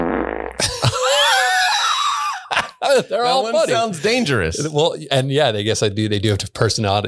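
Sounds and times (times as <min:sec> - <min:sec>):
wet fart: 0:00.0 - 0:00.7
laughter: 0:00.6 - 0:05.0
speech: 0:02.8 - 0:07.0.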